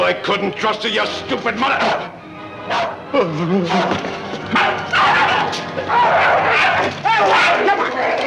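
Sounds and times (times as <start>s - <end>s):
speech: 0.1s - 8.2s
agitated voices during a scuffle: 1.7s - 8.2s
dog barking and snarling while attacking a man: 2.7s - 3.0s, 4.5s - 7.8s.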